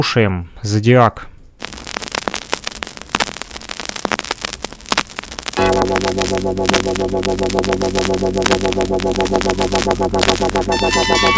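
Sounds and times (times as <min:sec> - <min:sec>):
speech: 0:00.0 - 0:01.3, 0:05.9 - 0:11.3
vinyl record surface crackle: 0:01.6 - 0:11.3
sustained music: 0:05.6 - 0:11.3.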